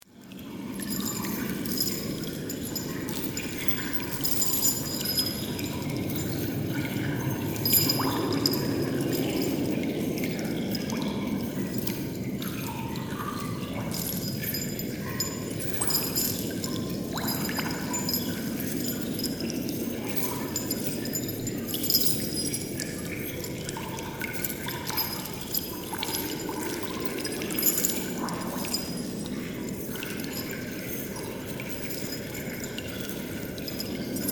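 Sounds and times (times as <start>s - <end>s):
wind in a dungeon: 0.0s - 34.3s
water drips in a dungeon: 0.3s - 34.3s
dungeon chains rattling: 0.8s - 10.1s, 13.7s - 34.3s.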